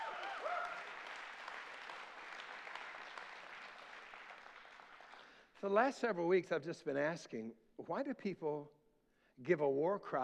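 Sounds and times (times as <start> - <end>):
person cheering: 0.0 - 0.9
audience clapping hands: 0.0 - 5.4
speech: 5.6 - 8.8, 9.4 - 10.2.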